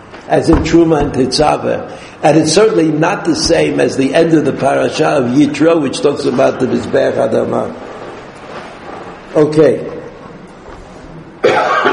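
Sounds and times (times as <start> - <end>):
speech: 0.3 - 7.9, 9.4 - 9.9
harsh cough of a person giving a lesson: 11.4 - 11.9.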